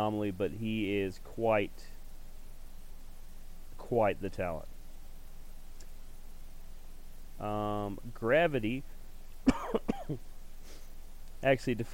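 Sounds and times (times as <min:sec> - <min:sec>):
speech: 0:00.0 - 0:02.0, 0:03.9 - 0:04.7, 0:07.4 - 0:10.3, 0:11.4 - 0:11.9
person coughing harshly: 0:09.5 - 0:10.2.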